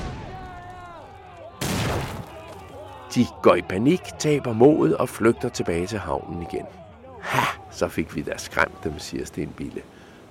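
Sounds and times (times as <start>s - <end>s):
hand grenades exploding on pirate ships: 0.0s - 0.6s, 1.6s - 2.3s
speech: 3.1s - 10.0s.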